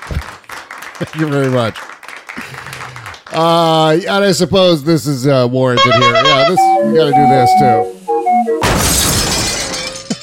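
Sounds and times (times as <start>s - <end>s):
speech: 1.0s - 2.6s, 3.4s - 8.0s
short tone: 5.8s - 8.7s
car crashing into a wall: 8.6s - 10.1s
debris ringing and tinkling: 8.6s - 10.2s
glass shattering: 8.6s - 10.2s.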